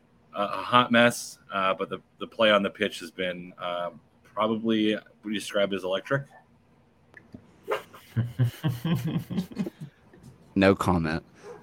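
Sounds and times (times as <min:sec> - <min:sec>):
speech: 0:00.4 - 0:06.4, 0:08.2 - 0:09.8, 0:10.6 - 0:11.6
dog yapping: 0:07.7 - 0:08.0, 0:11.4 - 0:11.6
laughter: 0:08.0 - 0:10.0.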